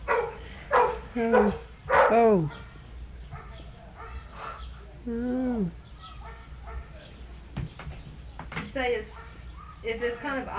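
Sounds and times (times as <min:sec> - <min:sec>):
dog barking: 0:00.0 - 0:02.7, 0:03.3 - 0:04.9, 0:06.0 - 0:07.1, 0:09.1 - 0:10.0
speech: 0:01.2 - 0:02.6, 0:05.0 - 0:05.8, 0:08.8 - 0:09.2, 0:09.8 - 0:10.5.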